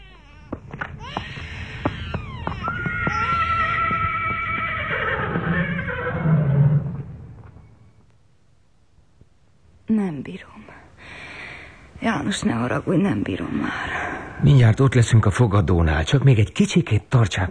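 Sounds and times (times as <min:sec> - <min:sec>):
horse neighing: 0:00.0 - 0:07.4
sharp hoof clicks: 0:00.4 - 0:05.9
speech: 0:10.0 - 0:10.6, 0:12.0 - 0:17.4.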